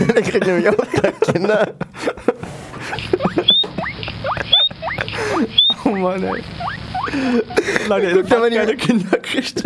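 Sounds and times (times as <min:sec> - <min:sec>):
laughter: 0:00.0 - 0:09.6
speech: 0:00.2 - 0:03.3, 0:05.2 - 0:09.6
guinea pigs squeaking: 0:02.9 - 0:08.8.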